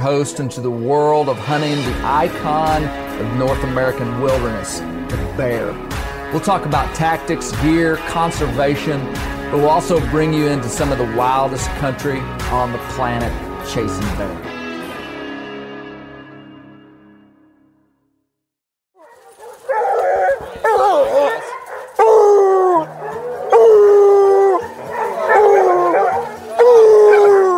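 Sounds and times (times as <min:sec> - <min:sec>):
speech: 0:00.0 - 0:14.5
pack of free-ranging hunting hounds baying and howling on a track: 0:19.0 - 0:27.5.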